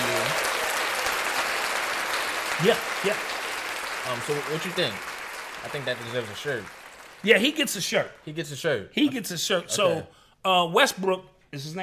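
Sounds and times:
group applauding with hands clapping: 0.0s - 8.6s
speech: 2.6s - 3.3s, 4.0s - 11.8s.

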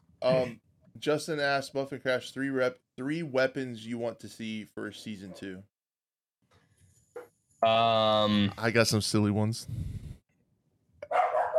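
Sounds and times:
speech: 0.2s - 5.7s, 7.6s - 10.0s
dog barking: 11.0s - 11.5s.

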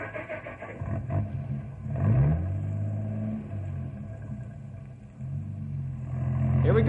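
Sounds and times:
truck with a sled on the back revving and pulling away: 0.0s - 6.8s.

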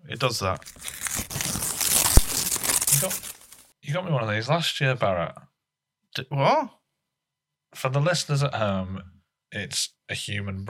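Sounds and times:
speech: 0.2s - 1.1s, 3.0s - 3.3s, 3.9s - 5.5s, 6.2s - 6.8s, 7.8s - 10.6s
wet wrapping paper crinkling and ripping as it is torn open: 0.6s - 3.7s.

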